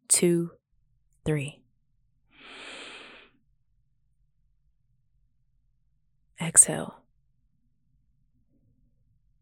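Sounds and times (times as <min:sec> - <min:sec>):
speech: 0:00.1 - 0:00.6, 0:01.2 - 0:01.6, 0:06.5 - 0:07.0
person breathing during a guided relaxation exercise: 0:02.3 - 0:03.4.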